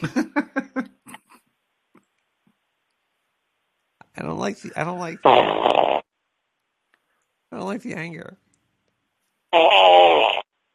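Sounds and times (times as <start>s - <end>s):
speech: 0.0s - 0.3s, 4.4s - 5.8s, 7.7s - 8.4s, 9.5s - 10.4s
laughter: 0.0s - 1.4s
fart: 5.2s - 6.1s, 9.6s - 10.5s.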